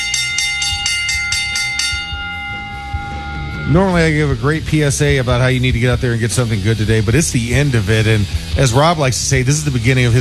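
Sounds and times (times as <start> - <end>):
bell ringing rapidly for the final lap: 0.0 - 8.2
speech: 3.7 - 10.1.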